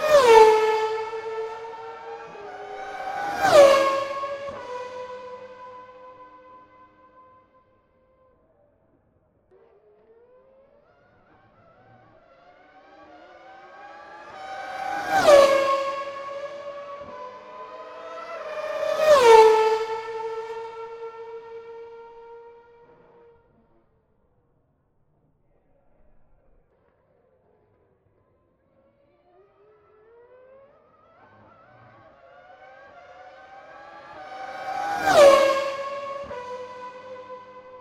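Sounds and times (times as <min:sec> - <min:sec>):
Formula 1 V8 and V10 racing car engines screaming past at Monterey: 0:00.0 - 0:07.1, 0:10.2 - 0:23.2, 0:28.9 - 0:37.8.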